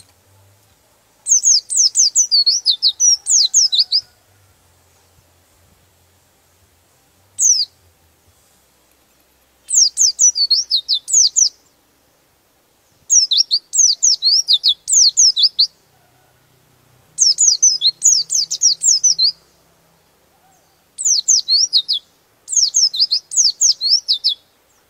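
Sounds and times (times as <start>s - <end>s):
white-eye twittering high thin downslurred notes: 1.2s - 4.1s, 7.4s - 7.8s, 9.7s - 11.6s, 13.1s - 15.8s, 17.2s - 19.4s, 20.4s - 24.5s.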